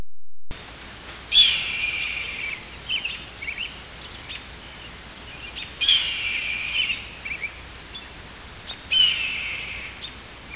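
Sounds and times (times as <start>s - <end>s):
hawk in eastern Washington: 1.3s - 8.1s, 8.7s - 10.5s.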